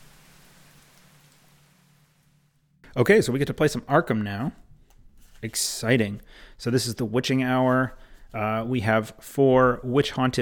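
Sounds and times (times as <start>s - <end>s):
dense icy rain pelting down: 0.0s - 2.6s
speech: 2.9s - 4.6s, 5.4s - 10.4s.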